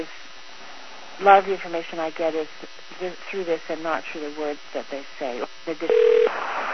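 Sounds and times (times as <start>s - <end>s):
speech: 1.2s - 6.6s
steady hiss of phone-line noise: 4.7s - 6.3s
electronic telephone keypad tone as a caller joins: 5.9s - 6.3s.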